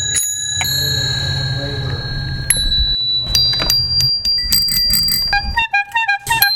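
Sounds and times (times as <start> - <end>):
bicycle bells ringing: 0.0 - 5.6
low rumbling background: 0.4 - 5.6.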